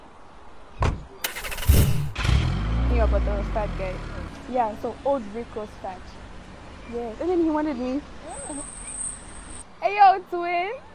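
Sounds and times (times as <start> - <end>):
car door thudding shut: 0.8 - 1.1
car engine cranking and catching into a low rumble: 1.2 - 4.4
speech: 3.0 - 6.2, 6.9 - 8.8, 9.8 - 10.9.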